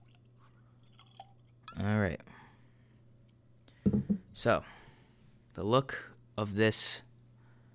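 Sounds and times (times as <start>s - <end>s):
whiskey pouring into a Glencairn glass: 0.0s - 1.9s
speech: 1.8s - 2.3s, 4.4s - 4.8s, 5.6s - 7.1s.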